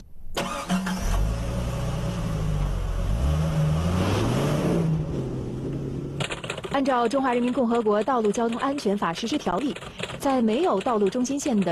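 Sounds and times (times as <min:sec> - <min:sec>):
road noise: 0:00.3 - 0:06.8
car engine humming and accelerating in a braking test: 0:00.4 - 0:06.3
speech: 0:06.8 - 0:11.6.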